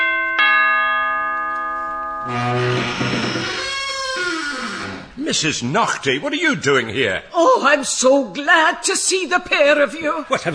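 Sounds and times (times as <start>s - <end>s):
doorbell chime: 0.0s - 3.4s
speech: 5.2s - 10.5s.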